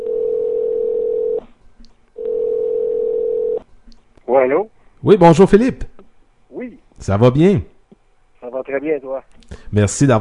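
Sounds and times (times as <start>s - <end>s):
telephone dial tone while a call is placed: 0.0s - 1.4s, 2.2s - 3.6s
speech: 4.3s - 5.9s, 6.6s - 7.7s, 8.6s - 10.1s.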